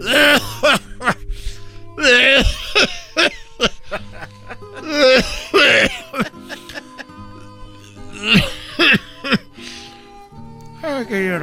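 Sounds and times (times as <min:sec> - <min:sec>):
man coughing: 0:00.0 - 0:01.2, 0:02.0 - 0:03.7, 0:04.8 - 0:06.6, 0:08.2 - 0:09.4
laughter: 0:02.0 - 0:07.4, 0:08.2 - 0:09.5.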